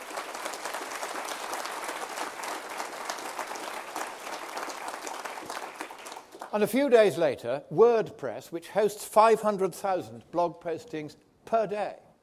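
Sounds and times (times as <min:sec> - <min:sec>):
audience round of applause: 0:00.0 - 0:06.7
speech: 0:06.5 - 0:12.0.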